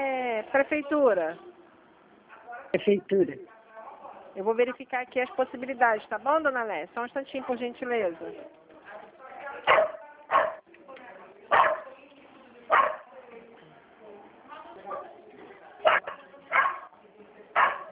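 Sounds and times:
low murmur of voices: 0.0 - 17.8
speech: 0.5 - 1.5, 2.7 - 3.5, 4.4 - 8.6
small dog barking: 9.7 - 10.6, 11.5 - 11.9, 12.7 - 13.1, 15.8 - 16.9, 17.6 - 17.8.

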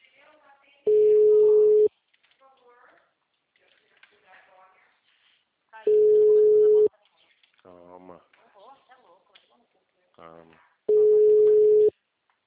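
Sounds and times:
telephone ringback tone while a call is being dialed: 0.9 - 1.9, 5.9 - 6.9, 10.9 - 11.9.

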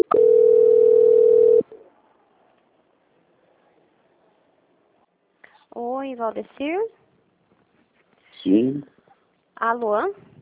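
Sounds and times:
telephone tone during a call transfer: 0.0 - 1.7
speech: 6.1 - 7.0, 8.4 - 9.0, 9.6 - 10.3.

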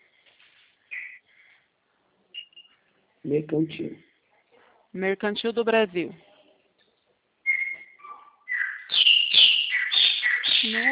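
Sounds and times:
birds chirping and whistling: 0.9 - 1.2, 7.4 - 10.9
speech: 3.2 - 4.1, 4.9 - 6.3.

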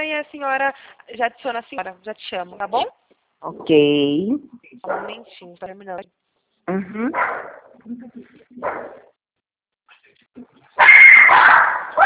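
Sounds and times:
speech: 0.2 - 9.1, 10.4 - 12.0
female pet dog barking: 4.9 - 5.3, 7.2 - 7.7, 8.6 - 9.1, 10.8 - 12.0.

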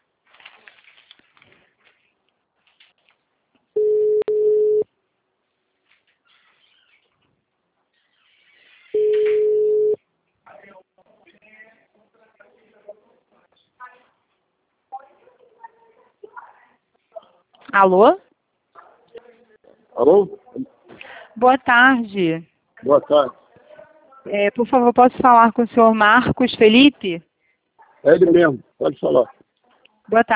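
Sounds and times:
telephone ringback tone: 3.8 - 4.8, 9.0 - 10.0
speech: 17.8 - 18.2, 20.0 - 20.7, 21.4 - 23.4, 24.3 - 27.3, 28.0 - 29.4, 30.1 - 30.3.

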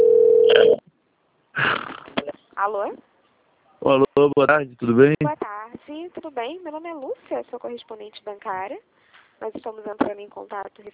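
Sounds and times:
telephone ringing tone for an incoming call: 0.0 - 0.8
speech: 2.6 - 3.1, 3.8 - 10.9.

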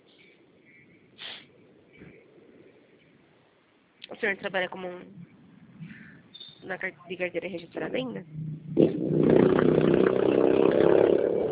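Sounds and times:
speech: 4.1 - 5.4, 6.6 - 10.0
motorcycle engine passing by: 8.2 - 11.4.

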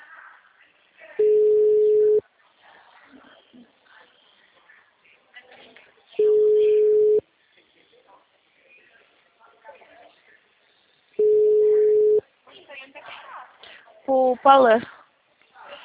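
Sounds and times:
telephone busy signal on a repeated call: 1.2 - 2.2, 6.2 - 7.2, 11.2 - 12.2
speech: 14.4 - 15.0.

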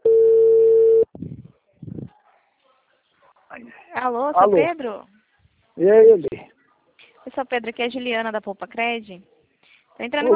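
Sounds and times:
telephone tone after a call is hung up: 0.0 - 1.1
speech: 4.0 - 5.1, 5.8 - 6.5, 7.3 - 9.3, 10.0 - 10.3.

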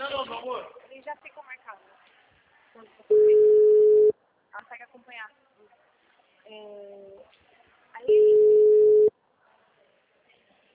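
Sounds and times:
telephone ringing tone while placing a call: 3.1 - 4.1, 8.1 - 9.1
speech: 6.5 - 7.4.

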